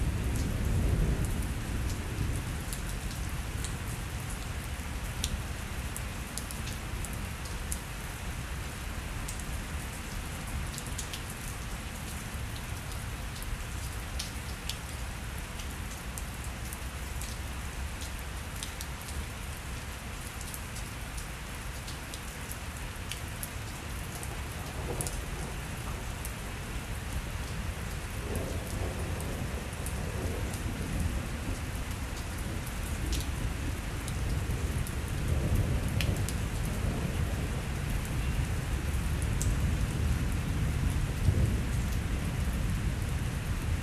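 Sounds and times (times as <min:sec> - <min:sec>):
steady dense rain pattering on surfaces in a midday thunderstorm: 0:00.0 - 0:43.8
deep low thunder rumble: 0:24.1 - 0:43.1.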